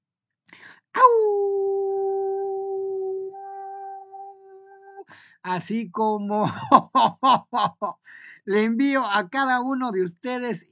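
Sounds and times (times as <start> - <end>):
breathy sound: 0.5 - 0.9
person imitating a howl: 1.0 - 5.1
speech: 5.4 - 10.6.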